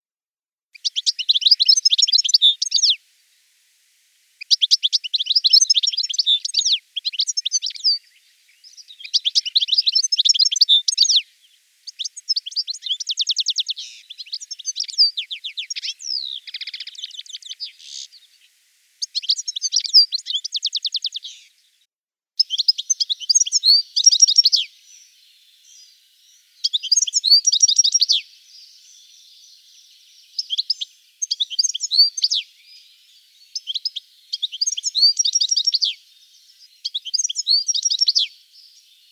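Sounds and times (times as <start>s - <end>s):
Carduelis carduelis singing: 0.8s - 3.0s, 4.4s - 21.5s, 22.4s - 39.1s.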